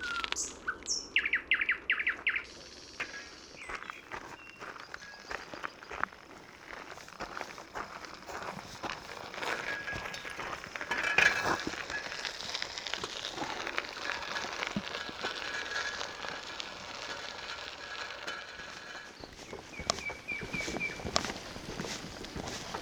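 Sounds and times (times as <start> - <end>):
nightingale singing by wet meadows: 0.0 - 11.6, 19.0 - 22.8
dense background of other birdsong: 0.0 - 22.8
faint footsteps of someone walking on a boardwalk among wet meadows: 2.1 - 22.8.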